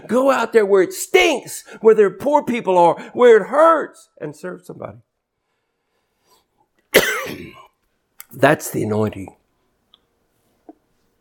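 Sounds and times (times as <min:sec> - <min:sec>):
speech: 0:00.0 - 0:05.1, 0:08.3 - 0:09.4
preacher coughing after choking mid-sermon: 0:06.9 - 0:07.8.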